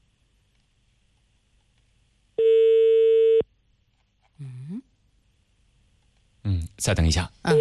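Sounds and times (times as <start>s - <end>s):
telephone ringing tone on an unanswered call to a traffic police office: 2.4s - 3.4s
speech: 6.8s - 7.5s.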